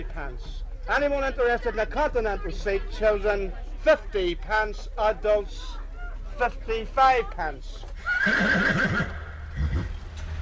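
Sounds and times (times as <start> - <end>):
speech: 0.0 - 5.8, 6.4 - 9.8
horse whinnying while being harnessed: 8.0 - 10.0.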